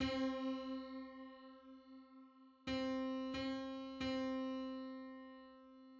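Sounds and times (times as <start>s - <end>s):
septimal comma interval tones on C: 0.0s - 4.4s.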